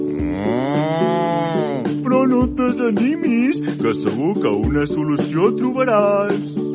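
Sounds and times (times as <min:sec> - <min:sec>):
cow mooing: 0:00.1 - 0:02.0
speech: 0:02.8 - 0:06.7.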